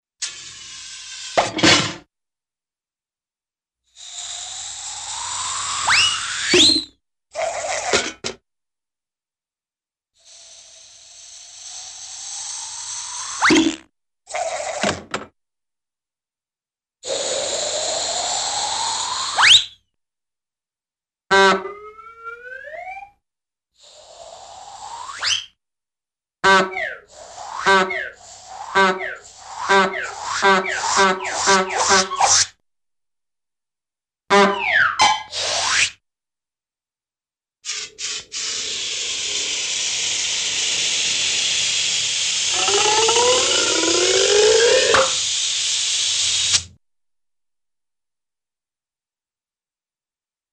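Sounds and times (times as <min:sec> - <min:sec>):
cartoon inflate pop: 0:00.2 - 0:02.1, 0:04.0 - 0:08.3, 0:10.2 - 0:15.1, 0:17.0 - 0:19.8, 0:23.8 - 0:25.6, 0:26.4 - 0:32.6, 0:34.3 - 0:36.0, 0:37.6 - 0:46.8
cartoon airy suction landing: 0:42.5 - 0:45.2.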